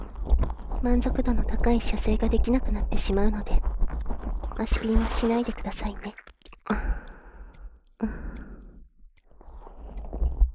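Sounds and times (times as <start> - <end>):
speech: 0.8 - 3.8, 4.6 - 7.0, 8.0 - 8.4
wet squelching as hips are lowered: 3.8 - 10.5.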